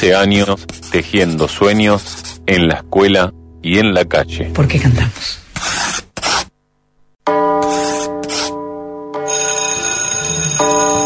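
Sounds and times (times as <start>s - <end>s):
speech: 0.0s - 5.4s
bell ringing with a sustained tone: 7.3s - 11.0s.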